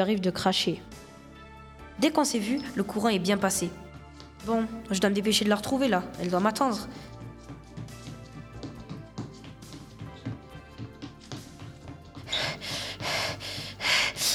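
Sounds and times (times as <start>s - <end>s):
speech: 0.0s - 1.0s, 2.0s - 3.8s, 4.4s - 7.2s
heavy panting from running: 12.2s - 14.3s.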